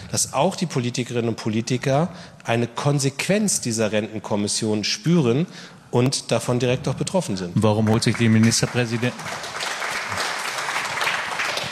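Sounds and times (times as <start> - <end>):
speech: 0.1 - 9.5
audience applause during a political discussion: 7.9 - 11.7.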